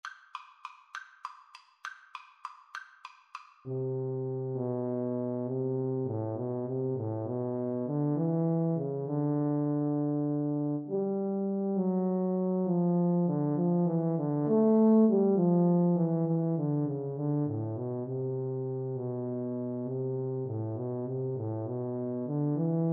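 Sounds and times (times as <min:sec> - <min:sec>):
tuba duet playing a waltz: 0:03.7 - 0:22.9.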